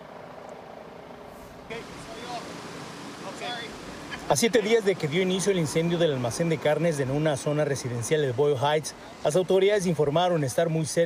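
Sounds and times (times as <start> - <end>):
firefighters' water cannons spraying water: 1.3 - 11.0
speech: 1.7 - 11.0.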